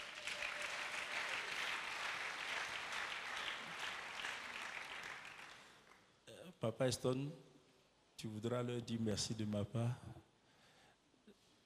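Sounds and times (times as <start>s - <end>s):
crowd at a church convention applauding: 0.0s - 6.0s
speech: 6.6s - 7.5s, 8.2s - 10.2s.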